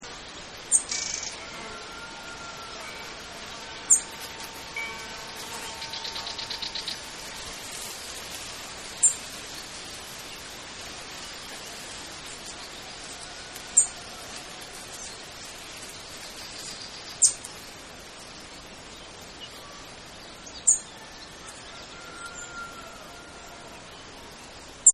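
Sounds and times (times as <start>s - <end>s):
birds: 0.0s - 24.9s
wind: 0.0s - 24.9s
flies buzzing: 0.9s - 16.0s
bell ringing: 2.6s - 7.4s.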